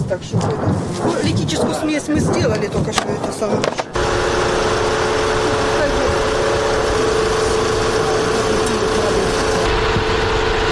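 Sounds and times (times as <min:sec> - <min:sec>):
speech: 0:00.1 - 0:04.2
evacuation car engine idling: 0:03.9 - 0:10.5.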